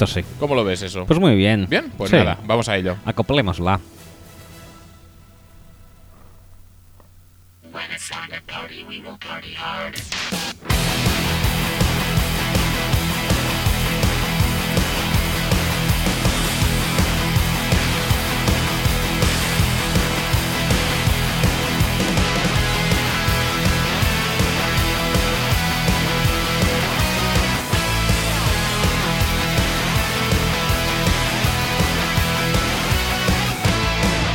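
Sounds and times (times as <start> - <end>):
speech: 0.0 - 4.0, 7.8 - 11.1
podcast intro theme with a steady punchy beat: 9.4 - 34.3.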